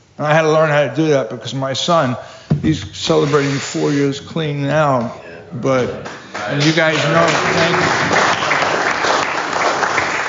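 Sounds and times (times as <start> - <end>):
speech: 0.2 - 8.4
audience applause: 6.0 - 10.2.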